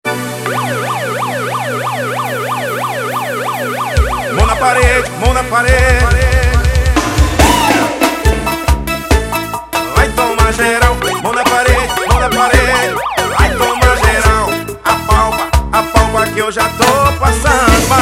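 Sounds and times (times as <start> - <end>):
wailing police siren: 0.1 - 6.6, 10.8 - 14.6
loud dance music with heavy steady thumping beat: 3.8 - 17.9
speech: 4.7 - 6.2.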